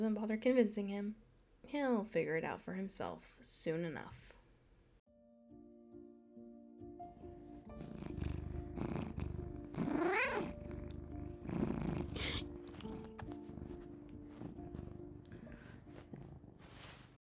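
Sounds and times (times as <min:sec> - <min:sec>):
speech: 0:00.0 - 0:04.4
cat purring while being petted: 0:07.1 - 0:17.2
cat short rising meow: 0:07.8 - 0:15.0.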